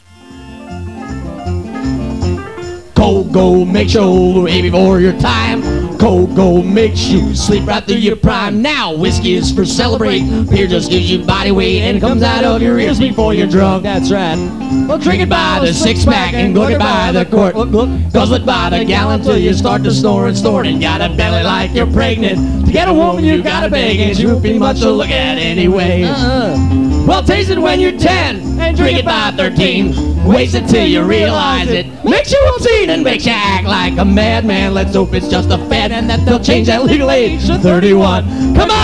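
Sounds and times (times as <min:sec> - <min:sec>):
people singing a beer song: 0:03.0 - 0:38.8.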